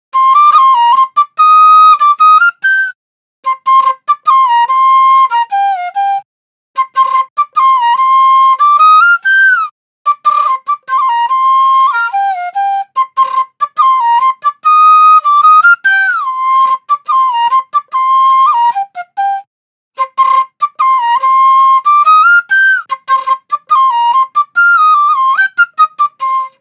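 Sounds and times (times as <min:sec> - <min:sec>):
drill flute loop in C minor: 0:00.2 - 0:06.2, 0:06.8 - 0:26.5.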